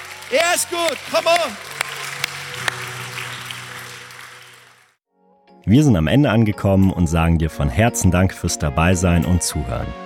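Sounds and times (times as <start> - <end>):
audience applause: 0.0 - 5.0
speech: 0.3 - 1.7, 5.7 - 10.0.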